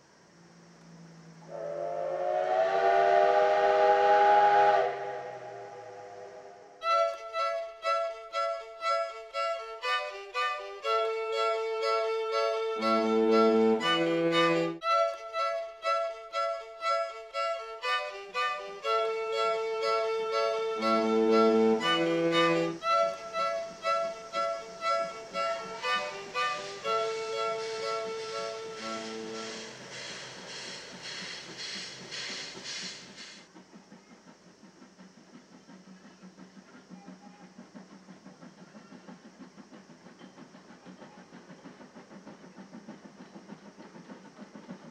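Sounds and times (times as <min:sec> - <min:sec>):
low steady rumble of passenger train moving: 0:00.0 - 0:44.8
steam locomotive fast regular pulsing with bright ringing tones: 0:00.0 - 0:44.8
steam locomotive wailing steam whistle: 0:01.0 - 0:31.6.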